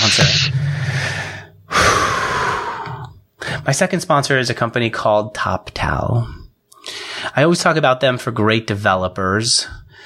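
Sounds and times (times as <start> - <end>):
speech: 0.0 - 0.6, 3.7 - 6.4, 7.4 - 10.0
person taking a strong rushing inhale: 0.4 - 3.7, 6.8 - 7.3.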